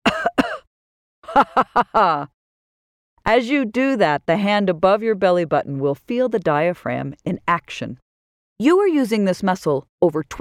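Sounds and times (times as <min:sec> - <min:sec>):
person coughing: 0:00.0 - 0:00.7
laughter: 0:01.3 - 0:02.3
speech: 0:01.4 - 0:02.4, 0:03.2 - 0:08.0, 0:08.6 - 0:10.3.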